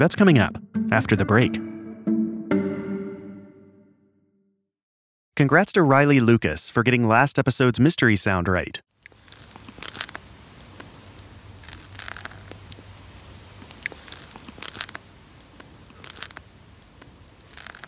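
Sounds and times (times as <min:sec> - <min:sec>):
speech: 0:00.0 - 0:01.7, 0:05.4 - 0:08.9
snail eating a piece of lettuce in an anechoic chamber: 0:08.9 - 0:17.8.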